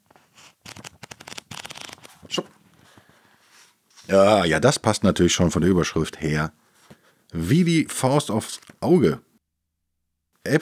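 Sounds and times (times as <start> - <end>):
book pages flipped through: 0.0 - 4.2, 8.4 - 8.9
soft book handling sounds: 0.0 - 4.4, 6.6 - 7.4, 8.3 - 9.0
speech: 4.1 - 6.6, 7.3 - 9.3, 10.4 - 10.6.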